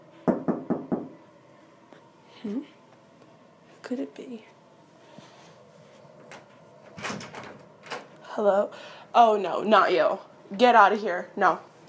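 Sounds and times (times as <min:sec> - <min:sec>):
quiet room hum: 0:00.0 - 0:11.8
speech: 0:02.4 - 0:02.8, 0:03.8 - 0:04.6, 0:08.4 - 0:11.8
front door swinging open with a rattling thud: 0:06.9 - 0:08.1.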